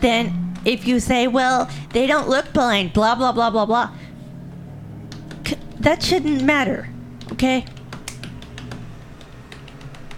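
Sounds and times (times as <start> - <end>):
speech: 0.0 - 4.0, 5.5 - 7.8
steady low hum: 0.0 - 9.5
typing on a computer keyboard: 7.2 - 10.1.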